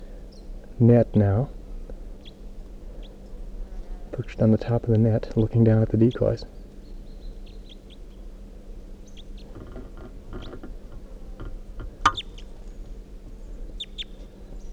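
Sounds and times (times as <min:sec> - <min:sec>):
speech: 0:00.8 - 0:01.6, 0:04.2 - 0:06.6
wild red male crossbill calling sharp kip notes: 0:12.0 - 0:12.5.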